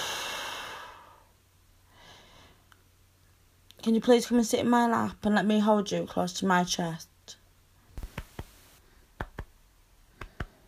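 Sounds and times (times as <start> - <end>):
deep slow breathing in and out: 0.0 - 2.7
speech: 3.8 - 7.1.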